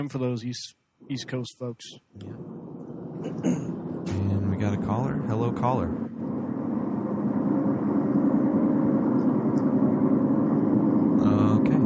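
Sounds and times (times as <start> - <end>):
speech: 0.0 - 2.5, 3.2 - 6.1
road traffic rumble heard through a phone line: 2.2 - 11.8.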